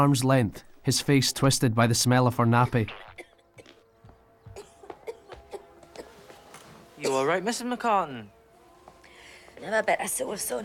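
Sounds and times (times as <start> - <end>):
speech: 0.0 - 3.2, 7.1 - 8.4, 9.6 - 10.6
woman's harsh throaty coughing fit: 3.0 - 3.8, 4.5 - 6.4, 7.0 - 7.3.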